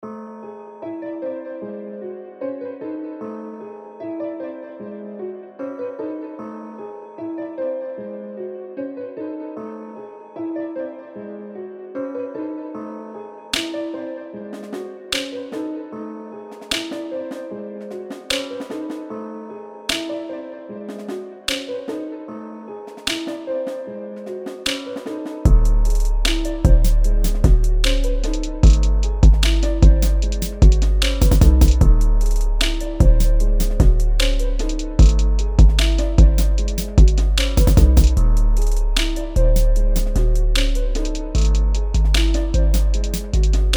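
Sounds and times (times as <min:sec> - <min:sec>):
trap beat: 0:25.5 - 0:43.7.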